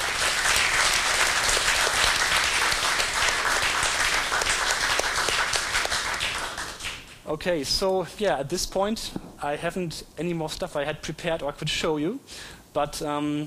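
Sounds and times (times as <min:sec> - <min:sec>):
room full of people applauding: 0:00.0 - 0:07.2
speech: 0:07.3 - 0:13.4.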